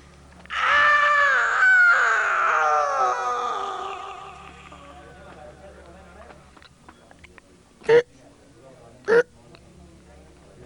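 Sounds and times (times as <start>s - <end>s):
drawn-out scream used as answering machine signal: 0.4s - 4.9s.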